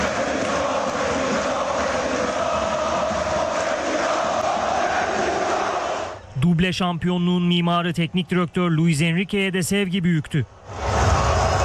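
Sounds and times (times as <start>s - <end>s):
large crowd chanting for the club president: 0.0s - 6.3s
speech: 6.6s - 10.8s.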